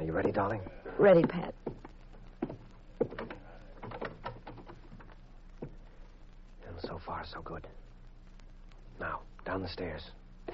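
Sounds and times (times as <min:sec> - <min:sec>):
speech: 0:00.0 - 0:01.6, 0:07.2 - 0:07.8, 0:09.0 - 0:10.2
front door creaking as it swings: 0:02.4 - 0:05.1
front door handle rattling: 0:03.1 - 0:04.8.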